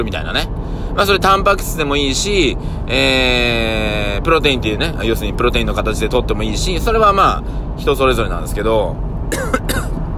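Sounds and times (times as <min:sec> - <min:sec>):
speech: 0:00.0 - 0:09.8
harsh coughs: 0:09.3 - 0:10.0.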